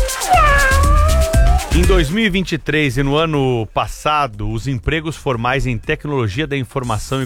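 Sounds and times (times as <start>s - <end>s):
cat meowing: 0.2s - 2.1s
speech: 1.9s - 7.2s.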